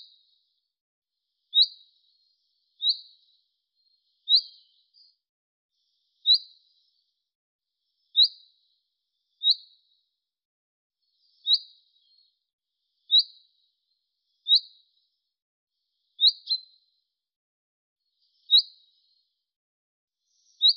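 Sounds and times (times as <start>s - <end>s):
bird giving short high chirps: 1.5s - 5.2s, 5.8s - 7.0s, 8.0s - 8.4s, 9.4s - 9.7s, 11.1s - 12.4s, 13.0s - 13.4s, 14.4s - 15.1s, 16.2s - 16.8s, 18.2s - 19.2s, 20.2s - 20.7s.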